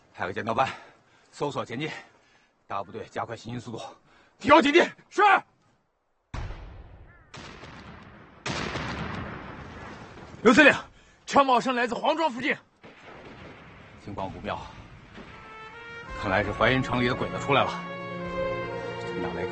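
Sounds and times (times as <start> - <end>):
speech: 0.2 - 2.1, 2.7 - 5.5, 10.4 - 12.7, 14.0 - 14.8, 16.2 - 17.9, 19.2 - 19.4
distant gunfire: 6.4 - 10.2.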